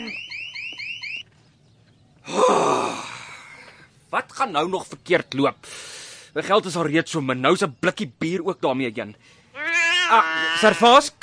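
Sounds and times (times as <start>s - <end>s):
electronic alarm chirping beeps: 0.0s - 1.3s
speech: 4.1s - 9.4s, 10.1s - 11.2s.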